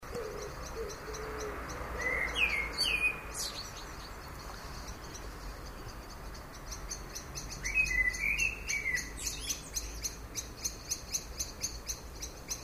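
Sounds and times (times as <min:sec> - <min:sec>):
common blackbird Turdus merula fluted song: 0:00.0 - 0:12.6.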